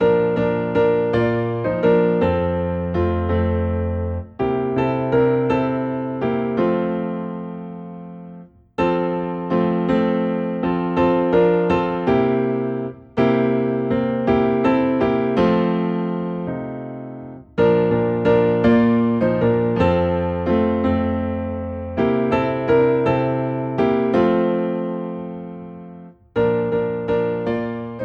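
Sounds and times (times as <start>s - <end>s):
piano in F: 0.0s - 28.0s.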